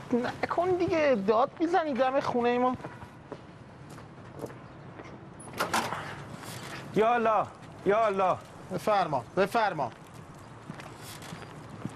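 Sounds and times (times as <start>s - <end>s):
speech: 0.1s - 2.9s, 7.0s - 10.0s
front door of a house being opened: 5.4s - 6.8s.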